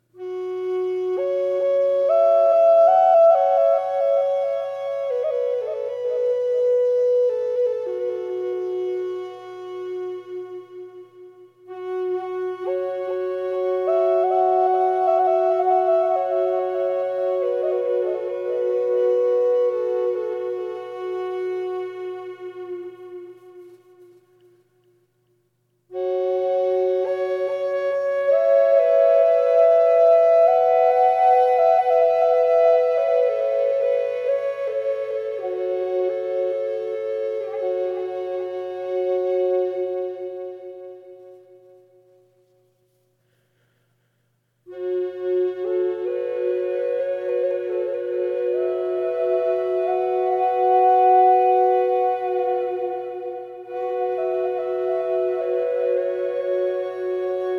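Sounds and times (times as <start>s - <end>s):
triple drone flute playing F sharp 440 with delay: 0.0s - 24.6s, 25.9s - 41.6s, 44.7s - 57.5s.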